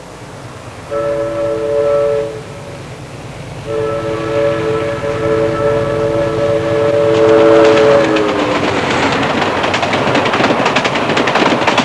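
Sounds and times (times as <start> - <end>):
train chugging: 0.0 - 11.8.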